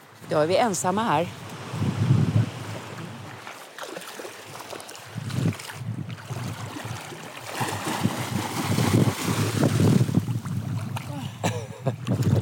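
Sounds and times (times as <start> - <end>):
steady wind rushing across open water buffeting the microphone: 0.2 - 3.4, 4.4 - 12.4
speech: 0.3 - 1.9
splashing of people swimming: 2.5 - 12.4.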